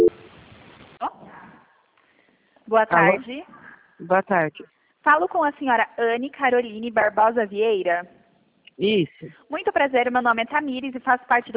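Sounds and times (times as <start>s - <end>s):
short telephone call transfer beep on a bank's customer service line: 0.0s - 0.2s
faint hiss of an open telephone line: 0.0s - 0.8s
speech: 2.7s - 8.2s, 8.8s - 11.5s.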